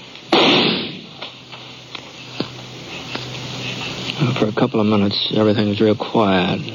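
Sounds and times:
gunshots echoing off canyon rock walls: 0.3s - 1.2s
speech: 4.2s - 6.7s.

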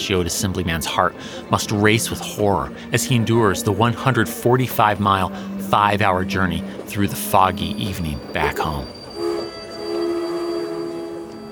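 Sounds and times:
speech: 0.0s - 9.0s
train pulling into a station on a foggy night: 0.0s - 11.5s
metallic squeal of train wheels: 6.7s - 11.5s.

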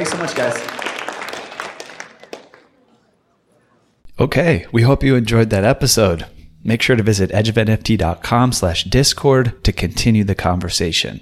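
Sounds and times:
speech: 0.0s - 0.8s, 4.2s - 11.2s
audience applause: 0.0s - 2.9s.

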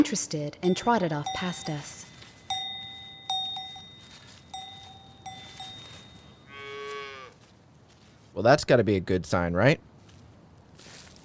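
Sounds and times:
speech: 0.0s - 2.1s, 8.4s - 9.9s
bell clanking: 0.6s - 6.6s
small spotted calf mooing: 6.5s - 7.4s.

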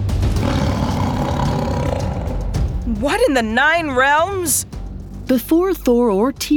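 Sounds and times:
saber-toothed tiger growling in a hall: 0.3s - 2.8s
speech: 3.0s - 4.7s, 5.3s - 6.5s.

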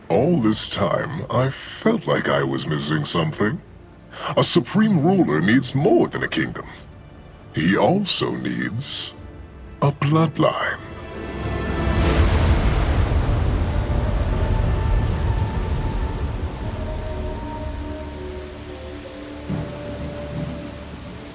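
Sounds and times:
steady heavy rain falling: 0.1s - 21.3s
speech: 0.3s - 6.8s, 7.6s - 9.2s, 9.8s - 10.8s
low rolling rumble of distant thunder: 11.0s - 21.3s.

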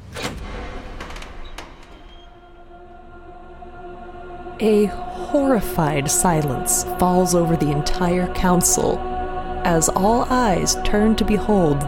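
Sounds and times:
door clunking and rattling as it is opened: 0.0s - 2.9s
speech: 4.6s - 11.8s.

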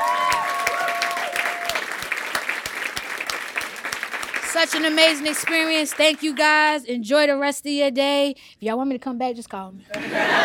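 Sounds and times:
crowd applauding: 0.0s - 6.7s
speech: 4.6s - 10.4s.

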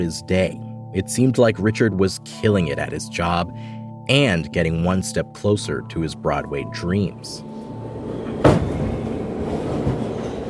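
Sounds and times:
speech: 0.0s - 7.5s
subway train clattering along tracks: 7.7s - 10.4s.

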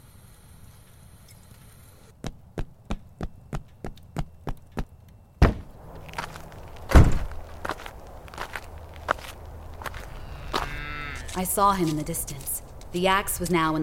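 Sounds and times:
person running footsteps toward a door: 2.2s - 12.8s
sharp thump and heavier knock of a door: 5.4s - 5.7s, 6.9s - 7.3s
speech: 11.4s - 13.8s.

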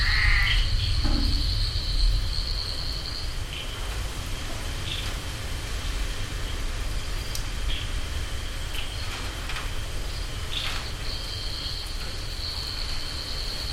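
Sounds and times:
low rumble: 0.0s - 4.5s
steady hiss of rain showers in Koforidua Ghana: 0.0s - 13.7s.

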